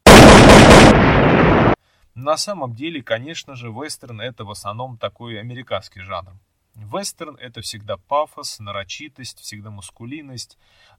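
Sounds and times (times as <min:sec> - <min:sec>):
loud booming gunshots in a western duel: 0:00.0 - 0:01.8
speech: 0:02.2 - 0:10.9.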